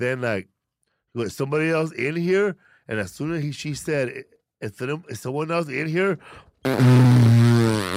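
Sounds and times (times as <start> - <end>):
speech: 0.0 - 7.4
loud drawn-out fart with a low buzzing tone: 6.6 - 7.9.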